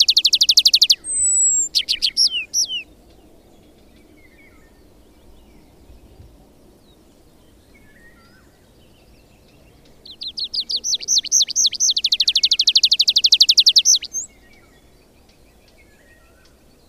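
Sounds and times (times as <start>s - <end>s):
tree pipit song with buzzy trills and repeated arching notes: 0.0s - 2.9s, 9.8s - 14.3s.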